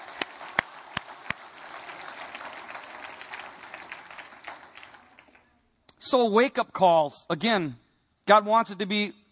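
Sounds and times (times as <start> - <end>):
church audience clapping: 0.0 - 5.6
speech: 6.0 - 9.2.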